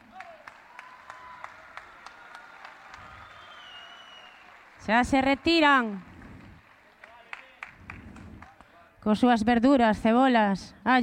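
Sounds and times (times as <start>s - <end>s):
audience clapping outdoors at a carnival: 0.0s - 8.8s
speech: 4.8s - 6.1s, 9.0s - 11.0s.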